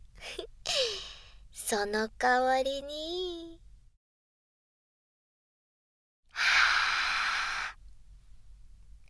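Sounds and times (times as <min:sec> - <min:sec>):
speech: 0:01.7 - 0:03.2
long airy breath blown close: 0:06.4 - 0:07.8.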